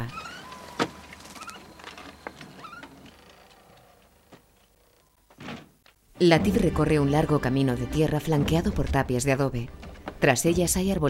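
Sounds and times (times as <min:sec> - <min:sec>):
faint creaks: 0:00.0 - 0:06.0
door shutting with a thud: 0:05.3 - 0:05.8
speech: 0:06.2 - 0:11.0.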